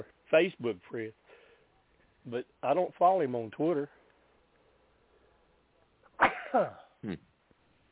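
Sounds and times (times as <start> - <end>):
speech: 0.0 - 1.2, 2.2 - 4.0, 6.2 - 7.3
person sneezing: 6.2 - 7.2.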